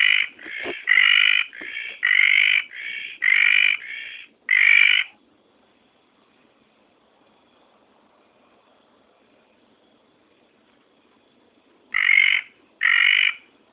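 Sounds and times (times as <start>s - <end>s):
red tree frog giving buzzy croaks: 0.0s - 5.2s, 11.9s - 13.5s.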